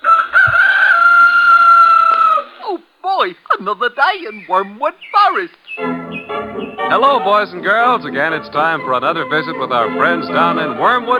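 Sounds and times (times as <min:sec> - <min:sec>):
rooster crowing: 0:00.0 - 0:02.6
speech: 0:03.3 - 0:11.1.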